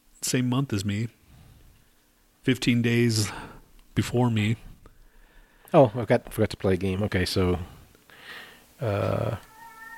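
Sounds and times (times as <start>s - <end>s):
speech: 0.3s - 1.2s, 2.4s - 4.7s, 5.7s - 7.8s, 8.8s - 9.5s
fainter, thinner cry: 8.8s - 9.9s
cat meowing: 9.2s - 9.9s.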